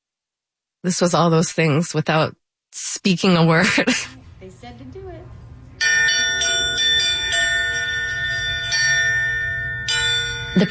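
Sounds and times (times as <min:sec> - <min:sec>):
speech: 0:00.8 - 0:05.0
bell ringing: 0:05.8 - 0:10.6.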